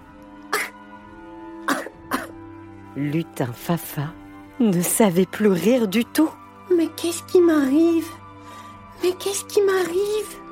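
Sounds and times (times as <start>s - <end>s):
dry coughs: 0.5s - 0.8s, 1.6s - 2.4s
speech: 3.0s - 8.2s, 9.0s - 10.4s.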